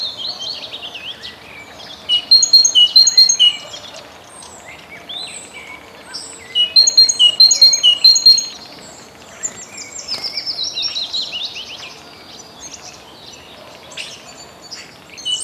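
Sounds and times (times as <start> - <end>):
chorus of small birds trilling and chirping: 0.0 - 15.4
great tit song phrases: 2.1 - 3.6, 6.6 - 8.5.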